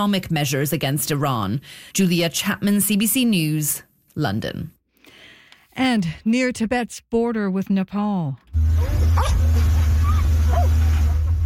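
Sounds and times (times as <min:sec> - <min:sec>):
speech: 0:00.0 - 0:04.8, 0:05.8 - 0:09.5
steady loud low rumble of engines or machinery: 0:08.6 - 0:11.4
rescue dogs barking while searching debris after flash floods: 0:08.8 - 0:11.4.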